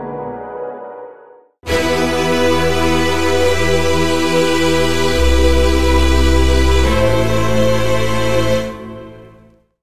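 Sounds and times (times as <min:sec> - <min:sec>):
UK drill and UK grime chords: 0:01.7 - 0:09.4.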